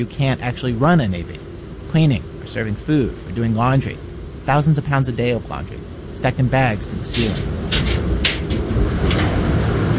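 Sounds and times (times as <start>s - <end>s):
speech: 0.0s - 8.0s
constant low machine rumble in a Navy laundry: 0.0s - 9.9s
door of a large laundry dryer being opened in a Navy laundry: 7.2s - 9.9s.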